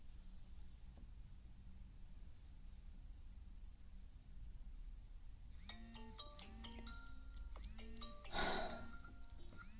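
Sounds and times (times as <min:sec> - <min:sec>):
low hum: 0:00.0 - 0:09.7
phone melodic ringtone for an incoming call: 0:05.6 - 0:09.7.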